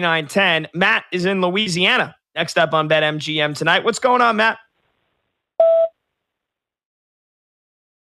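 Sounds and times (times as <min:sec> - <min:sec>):
speech: 0:00.0 - 0:04.6
short electronic phone beep on a call line: 0:05.6 - 0:05.9.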